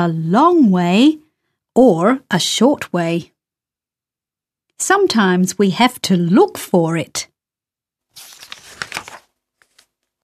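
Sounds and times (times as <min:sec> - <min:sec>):
speech: 0:00.0 - 0:01.2, 0:01.8 - 0:03.3, 0:04.8 - 0:07.3
paper bag crinkling and rustling: 0:08.1 - 0:10.0.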